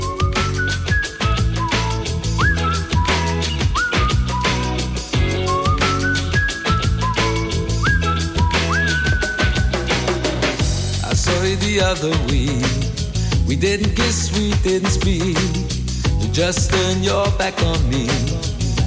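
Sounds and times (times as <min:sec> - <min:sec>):
whistled melody in a 1992 pop song: 0:00.0 - 0:10.6
1992 pop song with steady drums and full band backing: 0:00.0 - 0:18.8
speech: 0:11.9 - 0:12.8, 0:13.6 - 0:18.5.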